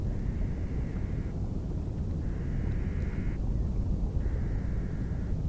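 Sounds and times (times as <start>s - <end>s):
birds at Geyser Hill near Sulphide Spring: 0.1s - 1.3s, 2.2s - 3.4s, 4.2s - 5.3s.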